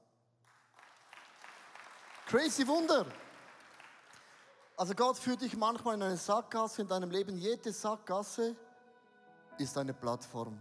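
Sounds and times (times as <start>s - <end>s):
audience applause: 0.5s - 5.1s
speech: 2.3s - 3.2s, 4.8s - 8.6s, 9.6s - 10.6s.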